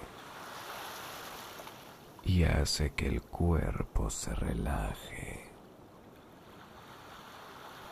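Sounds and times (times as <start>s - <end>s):
soft steady wash of ocean surf: 0.0s - 2.3s, 5.6s - 7.9s
speech: 2.2s - 5.5s
person speaking calmly: 2.2s - 5.6s.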